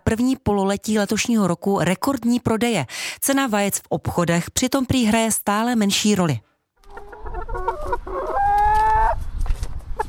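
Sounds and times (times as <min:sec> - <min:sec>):
speech: 0:00.1 - 0:06.5
chickens clucking in a backyard coop in a family-house garden in Telč: 0:06.8 - 0:10.0
chicken long drawn-out call: 0:06.9 - 0:09.2.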